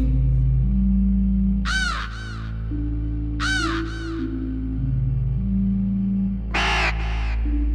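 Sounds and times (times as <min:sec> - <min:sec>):
low steady droning backdrop of sustained tones: 0:00.0 - 0:07.7
raven cawing with harsh double croaks: 0:01.6 - 0:02.8, 0:03.4 - 0:04.4, 0:06.5 - 0:07.5.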